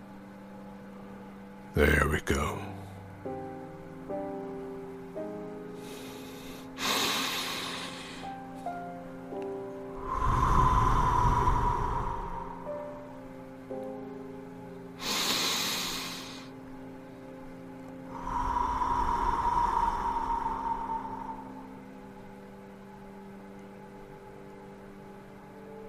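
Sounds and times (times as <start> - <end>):
soft sustained musical tones: 0.0 - 25.8
speech: 1.8 - 2.7
slow deep breathing in and out: 5.7 - 8.6, 10.0 - 13.1, 15.0 - 16.6, 18.0 - 22.4.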